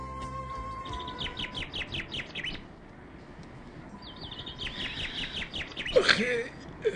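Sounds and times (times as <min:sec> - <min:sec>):
several different birds singing and chirping: 0:00.2 - 0:02.7, 0:03.9 - 0:06.8.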